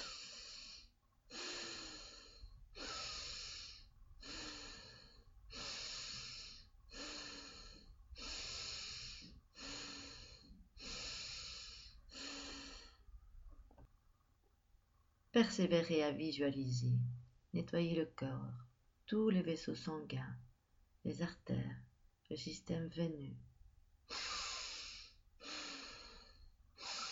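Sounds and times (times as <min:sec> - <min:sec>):
slow breathing in and out through the nose during a guided breathing exercise: 0:00.0 - 0:13.1, 0:24.1 - 0:27.1
speech: 0:15.4 - 0:20.4, 0:21.0 - 0:23.5.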